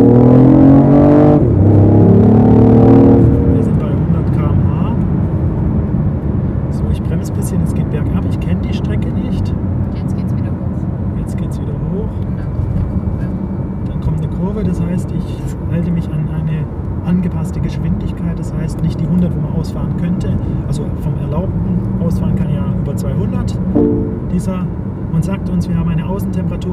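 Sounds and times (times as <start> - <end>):
automatic car engine revving hard at full throttle: 0.0 - 4.3
loud steady roar of road and engine noise: 0.0 - 26.7.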